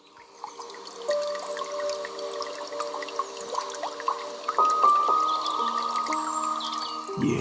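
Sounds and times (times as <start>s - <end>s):
water trickling and dripping: 0.1s - 6.5s
soft piano music: 0.3s - 7.2s
speech: 7.2s - 7.4s.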